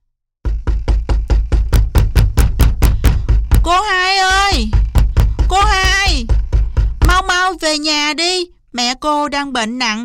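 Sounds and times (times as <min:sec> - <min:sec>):
squirrel hurriedly knocking on the door of a house: 0:00.4 - 0:07.8
speech: 0:07.7 - 0:10.0.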